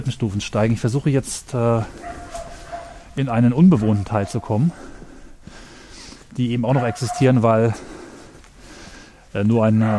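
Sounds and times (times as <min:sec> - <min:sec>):
speech: 0:00.0 - 0:02.2, 0:03.2 - 0:04.9, 0:06.4 - 0:07.9, 0:09.3 - 0:09.9
dog barking in a deserted area: 0:01.9 - 0:04.9, 0:06.7 - 0:07.8, 0:09.8 - 0:09.9.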